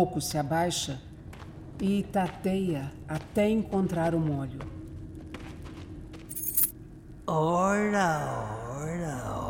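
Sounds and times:
speech: 0:00.0 - 0:01.1, 0:01.8 - 0:04.8, 0:07.3 - 0:09.4
bunch of keys falling on the floor: 0:06.3 - 0:06.7.

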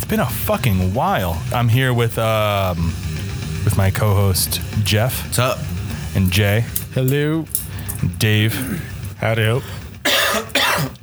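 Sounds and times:
speech: 0:00.1 - 0:11.0
person coughing into the microphone: 0:07.7 - 0:11.0.

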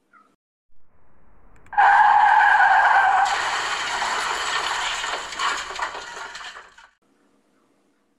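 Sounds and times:
car crashing into a tree: 0:01.0 - 0:07.0
car skidding with high tire squeal: 0:01.7 - 0:05.7.

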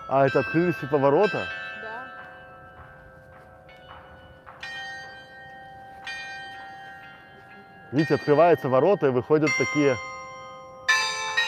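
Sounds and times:
clock tower bells chiming at different pitches: 0:00.0 - 0:11.4
speech: 0:00.1 - 0:01.6, 0:07.9 - 0:10.1.

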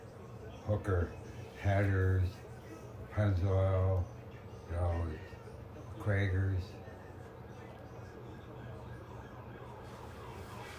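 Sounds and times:
murmur of voices: 0:00.0 - 0:10.7
speech: 0:00.7 - 0:02.4, 0:03.2 - 0:05.4, 0:06.0 - 0:06.8
police car siren wailing faintly from over a hill: 0:07.6 - 0:10.7.

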